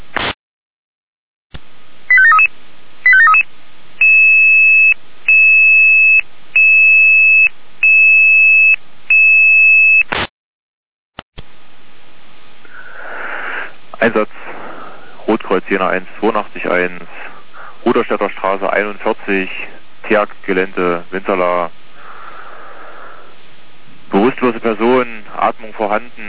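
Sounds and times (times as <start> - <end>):
soft static hiss: 1.6 - 9.1, 11.4 - 26.2
electronic fire brigade dispatch alarm tones: 2.1 - 2.5, 3.1 - 3.4, 4.0 - 10.1
speech: 15.8 - 17.3, 17.9 - 21.8, 24.4 - 26.2.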